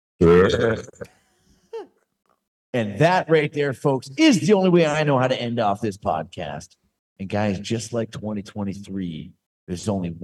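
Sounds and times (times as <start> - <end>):
loud deep gravelly burp: 0.2 - 1.2
short vocal grunt: 0.2 - 1.2
speech: 0.2 - 1.2, 2.8 - 10.2.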